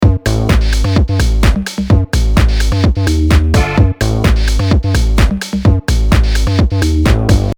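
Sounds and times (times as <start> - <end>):
riff with a beat: 0.0 - 7.5.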